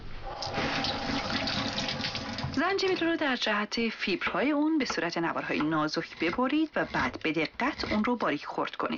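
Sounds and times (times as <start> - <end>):
water running from a tap while washing fresh ginger: 0.3 - 2.9
speech: 2.8 - 8.9.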